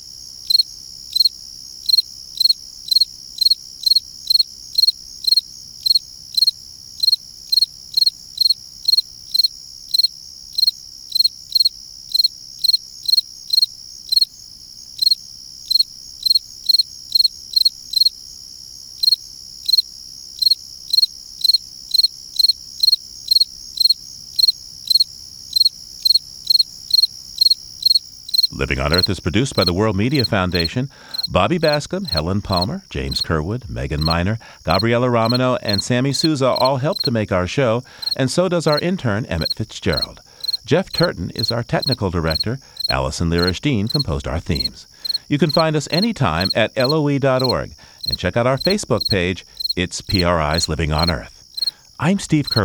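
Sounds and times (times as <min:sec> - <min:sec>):
fall field cricket chirping song: 0:00.0 - 0:52.6
faint low hum: 0:28.4 - 0:51.4
speech: 0:28.6 - 0:51.4, 0:52.0 - 0:52.6.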